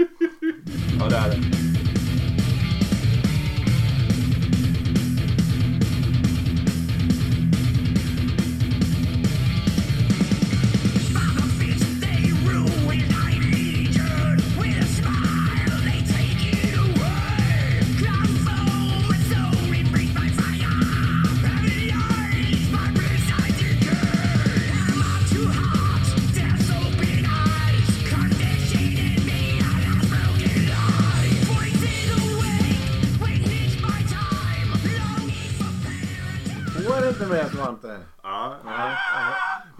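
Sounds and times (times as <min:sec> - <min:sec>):
laughter: 0:00.0 - 0:01.4, 0:38.6 - 0:39.7
thick distorted guitars: 0:00.0 - 0:37.8
harsh yelled vocal line: 0:00.6 - 0:01.9, 0:10.6 - 0:39.7
loud heavy metal song: 0:00.6 - 0:37.6.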